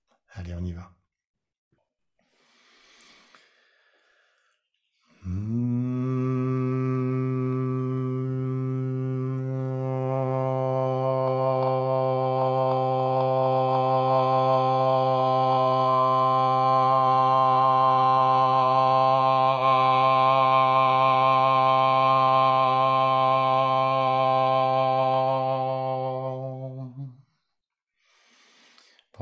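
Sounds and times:
speech: 0.4 - 1.0
single voice holding a resonant tone from hum to open vowel: 5.2 - 27.2.

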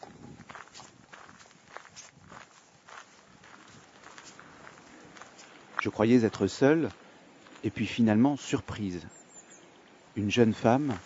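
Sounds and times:
footsteps crunching through the forest of Rambouillet on a winter morning: 0.0 - 8.1, 9.9 - 11.0
speech: 5.8 - 7.0, 7.6 - 9.2, 10.2 - 11.0.

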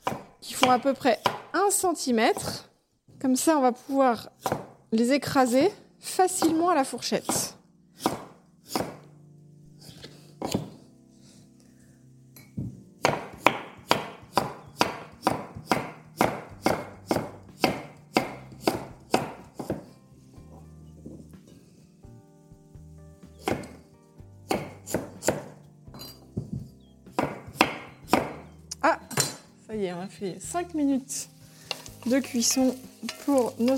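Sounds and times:
knife chopping vegetables on a board into rounds: 0.0 - 1.6, 4.4 - 4.8, 6.3 - 9.0, 9.9 - 10.8, 13.0 - 20.0, 23.4 - 23.8, 24.4 - 25.6, 26.4 - 28.5
speech: 0.6 - 7.6, 30.0 - 31.4, 32.0 - 33.7.

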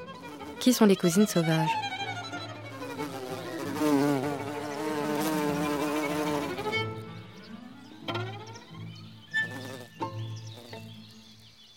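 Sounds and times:
wild bees buzzing: 0.0 - 11.2
speech: 0.6 - 1.9.

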